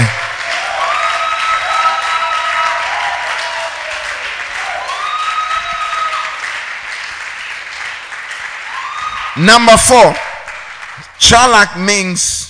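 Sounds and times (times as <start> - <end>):
large crowd clapping: 0.0 - 12.0
crowd whoops and shouts: 0.5 - 6.4, 8.7 - 9.4
speech: 9.4 - 10.2, 11.2 - 12.4.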